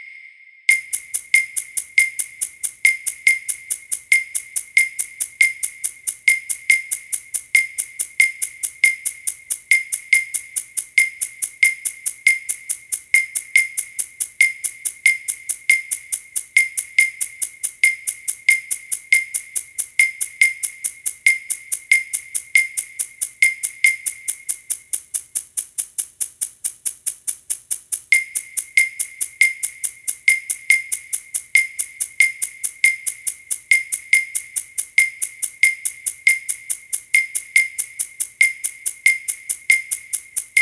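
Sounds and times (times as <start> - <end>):
orchestral percussion click: 0.7 - 40.6.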